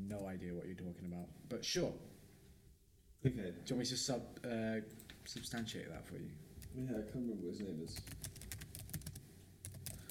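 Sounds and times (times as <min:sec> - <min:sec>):
speech: 0:00.1 - 0:02.2, 0:03.2 - 0:08.5
typing on a computer keyboard: 0:07.9 - 0:10.0.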